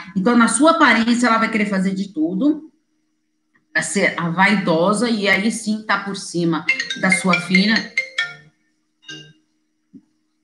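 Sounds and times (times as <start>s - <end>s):
faint steady hum: 0.0s - 10.4s
speech: 0.2s - 2.7s, 3.8s - 8.0s
mobile phone ringing with an incoming call: 6.6s - 9.4s.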